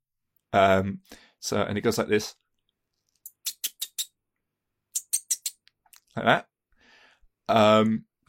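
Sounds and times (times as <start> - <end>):
speech: 0.5 - 2.4, 6.2 - 6.5, 7.5 - 8.2
person's high squeaky call summoning cats: 3.3 - 4.1, 5.0 - 5.6.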